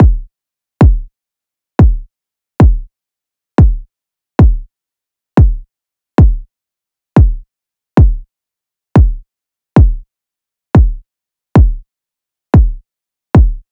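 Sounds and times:
garage kick drum loop: 0:00.0 - 0:01.1, 0:01.8 - 0:02.9, 0:03.6 - 0:04.7, 0:05.4 - 0:05.6, 0:06.2 - 0:06.5, 0:07.2 - 0:07.4, 0:08.0 - 0:08.3, 0:09.0 - 0:09.2, 0:09.8 - 0:10.0, 0:10.8 - 0:11.0, 0:11.6 - 0:11.8, 0:12.5 - 0:12.8, 0:13.4 - 0:13.6.

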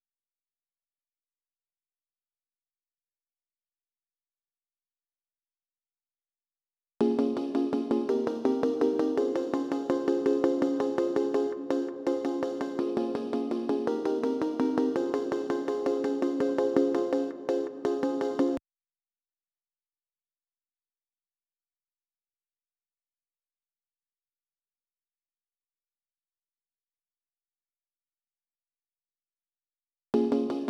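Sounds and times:
166 BPM G sharp major pluck melody loop: 0:07.0 - 0:18.6.

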